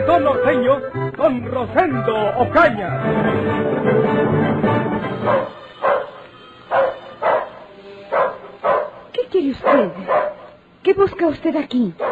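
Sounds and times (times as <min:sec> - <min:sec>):
speech: 0:00.0 - 0:05.6, 0:09.5 - 0:12.0
dog barking: 0:05.2 - 0:10.6.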